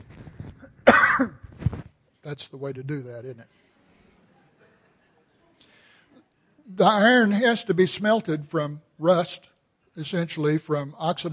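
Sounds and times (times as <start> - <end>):
person coughing: 0.8 - 1.4
speech: 1.2 - 1.4, 2.3 - 3.6, 6.7 - 11.3.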